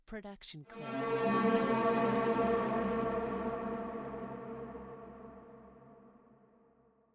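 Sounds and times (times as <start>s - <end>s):
ominous magic drone: 0.7s - 6.9s.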